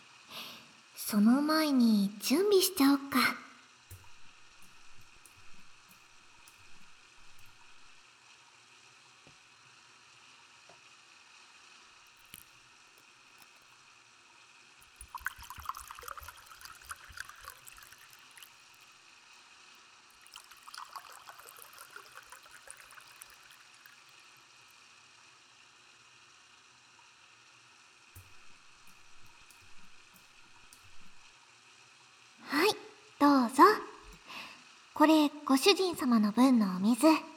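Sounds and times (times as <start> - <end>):
speech: 1.1 - 3.4, 35.0 - 37.3
hot water running into a filling bathtub: 3.9 - 8.0, 14.8 - 19.5, 20.1 - 24.8, 28.2 - 31.4.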